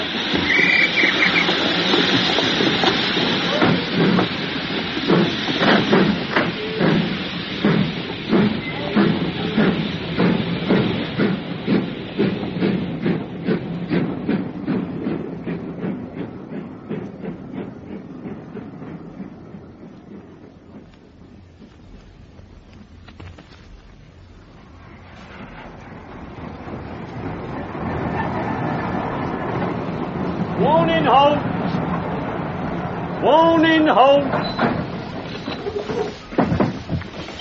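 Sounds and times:
steam locomotive hissing steam departing a station: 0.0s - 37.3s.

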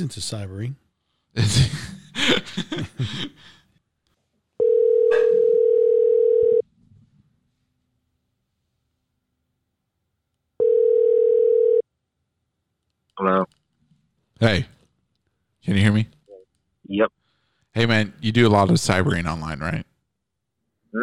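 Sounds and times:
speech: 0.0s - 3.6s, 13.2s - 13.6s, 14.4s - 14.8s, 15.6s - 16.2s, 16.9s - 17.2s, 17.8s - 19.9s
telephone line tone while placing a call: 4.6s - 6.6s, 10.6s - 11.8s.

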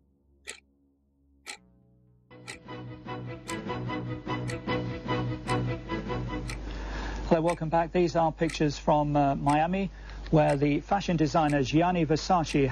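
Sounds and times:
loud dense musical drone: 2.3s - 6.9s
clock ticking: 3.4s - 3.6s, 4.4s - 4.6s, 6.4s - 6.6s, 7.3s - 7.7s, 8.4s - 8.7s, 9.4s - 9.7s, 10.4s - 10.8s, 11.4s - 11.8s, 12.4s - 12.7s
speech: 7.4s - 12.7s.

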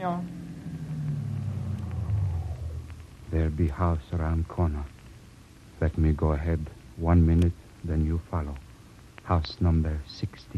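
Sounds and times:
speech: 0.0s - 0.4s, 3.3s - 5.0s, 5.8s - 8.6s, 9.3s - 10.5s
taxi cab engine rumbling while pulling up on a street corner: 0.0s - 4.4s.

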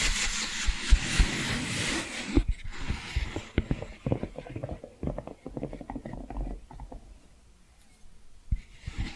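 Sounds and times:
scratching: 0.1s - 9.1s
tapping: 2.4s - 7.1s.

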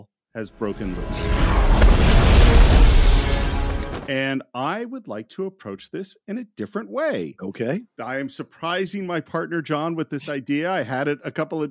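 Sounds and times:
speech: 0.4s - 2.2s, 4.1s - 11.7s
huge explosion with deep roaring rumble and crackling: 0.7s - 4.1s.

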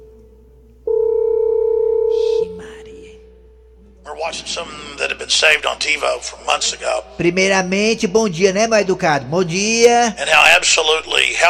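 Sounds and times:
telephone dial tone as a call is placed: 0.9s - 2.6s
speech: 4.2s - 11.4s.

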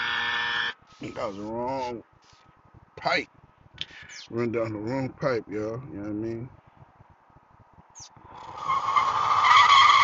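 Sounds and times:
race car engine rumbling: 0.0s - 10.0s
speech: 1.0s - 2.4s, 3.0s - 6.6s
race car tires squealing in a skid: 8.4s - 10.0s.

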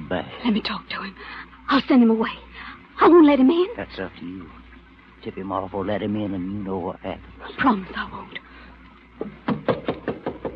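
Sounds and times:
speech: 0.1s - 4.6s, 5.2s - 8.4s, 9.2s - 9.5s
knocking on a wooden door: 9.2s - 10.5s.

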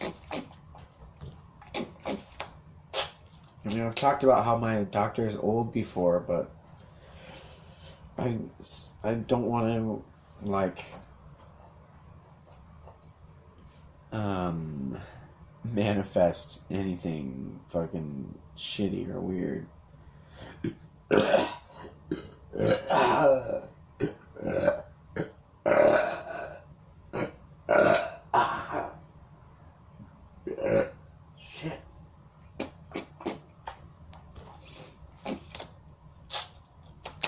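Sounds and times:
person burping: 0.0s - 0.6s, 20.5s - 29.0s, 30.4s - 31.0s, 32.6s - 33.4s
speech: 3.6s - 6.6s, 8.2s - 11.0s, 14.2s - 19.8s, 20.4s - 24.7s.

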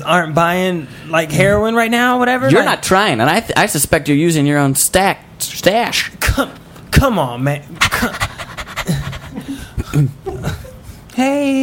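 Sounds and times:
speech: 0.0s - 8.3s, 10.0s - 10.6s, 11.2s - 11.6s
voiced talk-like sounds: 7.6s - 10.6s
dog panting: 7.8s - 9.8s.

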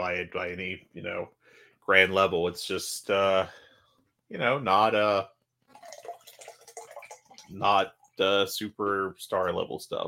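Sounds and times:
speech: 0.0s - 3.6s, 4.3s - 5.4s, 7.5s - 10.0s
drink pouring into a glass: 5.7s - 8.2s.

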